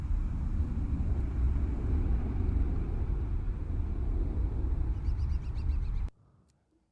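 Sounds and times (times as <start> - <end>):
low rumble in outdoor video game map ambience: 0.0 - 6.1
wind-like wash in outdoor video game map ambience: 0.0 - 6.1
faint birds chirping in outdoor video game map ambience: 4.8 - 6.1.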